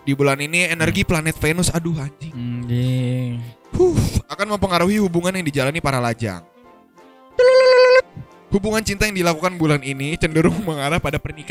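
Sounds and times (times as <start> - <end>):
speech: 0.0 - 6.5, 8.5 - 11.4
phone ringtone steady electronic tone: 7.4 - 8.1.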